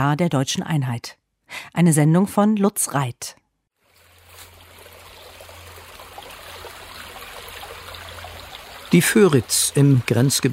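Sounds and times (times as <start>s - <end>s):
speech: 0.0s - 3.4s, 8.9s - 10.5s
small brook trickling and babbling: 3.8s - 10.5s.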